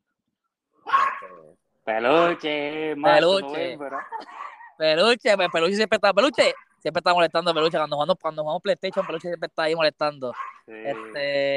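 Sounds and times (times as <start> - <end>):
small female dog barking and yelping: 0.8 - 1.5, 3.9 - 4.8, 8.9 - 9.2, 10.3 - 11.2
speech: 1.2 - 11.5.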